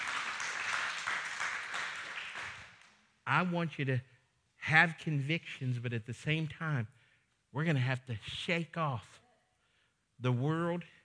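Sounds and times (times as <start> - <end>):
audience clapping hands: 0.0 - 2.8
speech: 3.3 - 9.2, 10.2 - 11.0.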